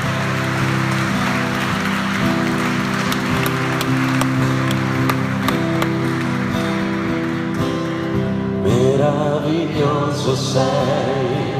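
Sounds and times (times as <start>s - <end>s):
crowd clapping: 0.0s - 8.7s
speech: 9.8s - 11.4s.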